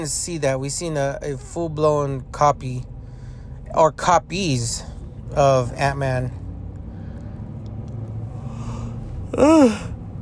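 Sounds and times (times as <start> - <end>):
speech: 0.0 - 2.9, 3.7 - 6.4, 9.3 - 9.9
person yawning: 8.5 - 10.0.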